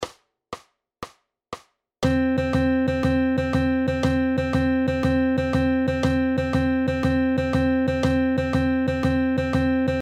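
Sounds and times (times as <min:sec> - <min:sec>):
swing phrased eighth notes: 0:02.0 - 0:10.0.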